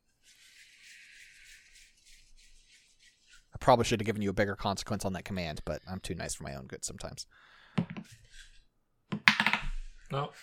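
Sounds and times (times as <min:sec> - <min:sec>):
speech: 0:03.6 - 0:08.2, 0:10.1 - 0:10.4
small die clattering across and dropping off a hard desk: 0:09.1 - 0:09.8.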